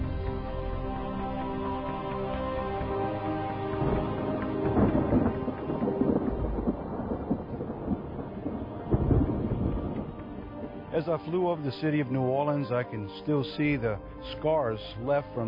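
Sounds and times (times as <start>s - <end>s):
steady pouring rain in a heavy thunderstorm: 0.0s - 15.4s
deep rumbling thunder: 3.8s - 10.9s
speech: 11.0s - 15.4s.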